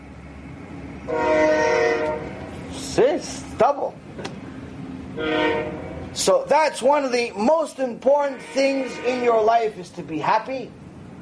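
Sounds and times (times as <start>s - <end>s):
low rumble of rail noise: 0.0s - 11.1s
train horn blast: 1.1s - 2.6s, 5.2s - 6.1s, 8.2s - 9.6s
speech: 3.0s - 4.5s, 5.2s - 10.8s.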